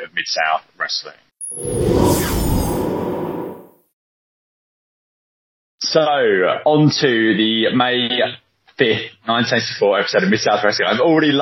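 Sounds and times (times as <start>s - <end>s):
speech: 0.0s - 2.3s, 5.9s - 11.4s
airy whoosh transition sound effect: 1.4s - 3.8s.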